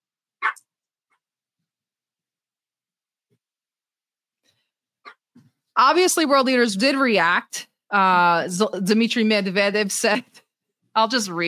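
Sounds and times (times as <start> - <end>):
puppy barking: 0.4 - 0.7
speech: 5.8 - 10.4, 11.0 - 11.4.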